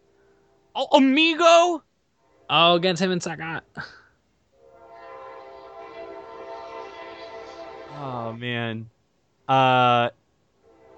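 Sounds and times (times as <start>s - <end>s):
speech: 0.8s - 1.9s, 2.5s - 4.0s, 8.0s - 8.9s, 9.5s - 10.2s
passing train horn blaring: 2.2s - 3.4s, 4.5s - 8.8s, 10.5s - 10.9s.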